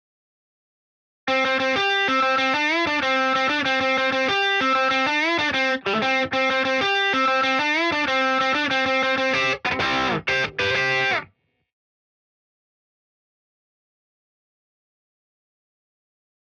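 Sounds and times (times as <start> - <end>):
lead melody with delay off: 1.3 - 11.2.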